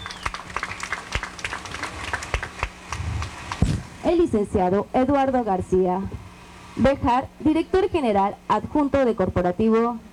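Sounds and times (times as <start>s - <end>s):
audience applauding at a ribbon-cutting ceremony: 0.0s - 3.6s
speech: 4.1s - 6.2s, 6.8s - 10.1s.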